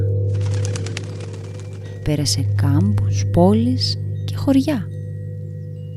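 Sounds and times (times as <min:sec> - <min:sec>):
steady low hum: 0:00.0 - 0:05.9
pigeon wings flapping in flight: 0:00.3 - 0:01.9
speech: 0:02.0 - 0:04.9.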